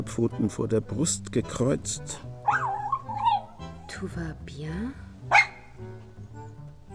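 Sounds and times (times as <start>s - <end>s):
speech: 0.0s - 2.3s, 4.0s - 5.9s
small light-brown dog barking: 2.4s - 3.6s, 5.3s - 5.8s.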